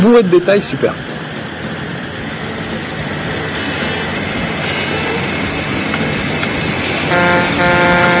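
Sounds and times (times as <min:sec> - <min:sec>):
speech: 0:00.0 - 0:01.1
road noise: 0:00.0 - 0:08.1
truck engine rumbling: 0:00.0 - 0:08.1
truck horn blaring: 0:07.0 - 0:08.1.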